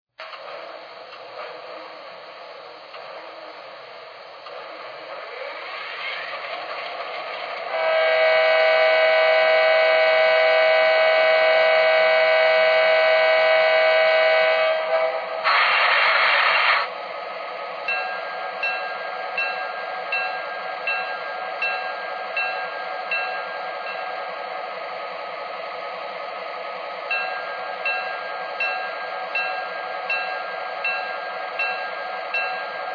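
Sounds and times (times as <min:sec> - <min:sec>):
GP38-2 diesel locomotive: 0:00.1 - 0:32.9.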